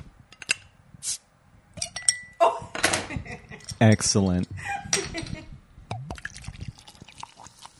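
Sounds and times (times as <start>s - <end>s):
faint glass clink: 1.8s - 2.4s
speech: 3.8s - 4.8s
Pacifico beer pouring into a glass: 6.0s - 7.7s
bubbly fizzing of beer: 6.0s - 7.7s.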